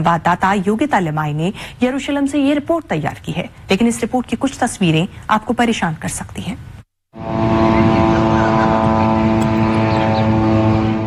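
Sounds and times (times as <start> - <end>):
speech: 0.0 - 6.7
Israeli military drones buzzing over Gaza: 7.2 - 11.0.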